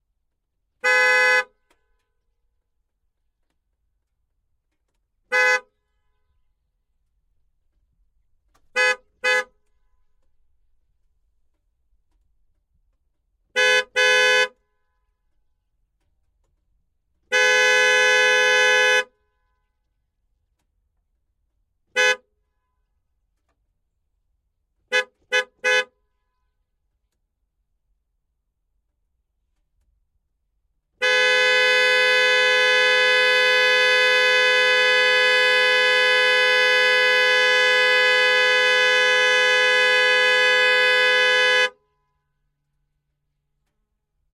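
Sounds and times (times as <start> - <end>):
Dodge Viper GTS horn: 0.8 - 1.7, 5.3 - 6.1, 8.7 - 9.6, 13.5 - 14.6, 17.2 - 19.2, 21.9 - 22.6, 24.9 - 26.3, 31.0 - 42.0.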